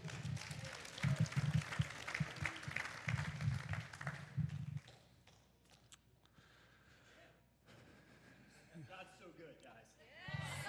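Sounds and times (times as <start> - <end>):
audience applause welcoming the next speaker: 0.0 - 4.2.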